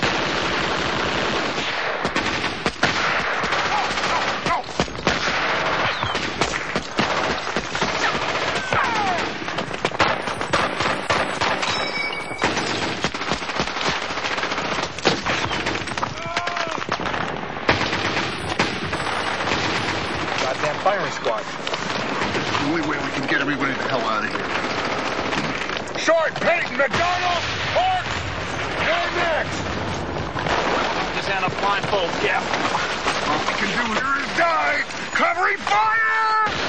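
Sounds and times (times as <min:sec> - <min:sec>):
machine-gun and rifle covering fire in a war film battle scene: 0:00.0 - 0:35.7, 0:36.4 - 0:36.6.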